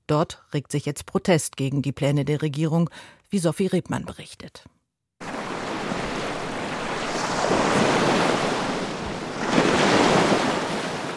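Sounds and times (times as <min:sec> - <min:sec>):
speech: 0:00.1 - 0:04.8
roar of the sea: 0:05.2 - 0:11.1
surf rolling onto a sandy beach: 0:05.2 - 0:11.1
wind: 0:05.2 - 0:11.1.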